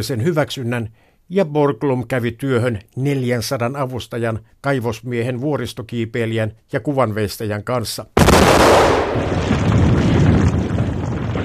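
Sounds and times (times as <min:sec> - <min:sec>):
speech: 0:00.0 - 0:09.7
explosive blast breaking granite rock from a mountain face: 0:08.2 - 0:11.4.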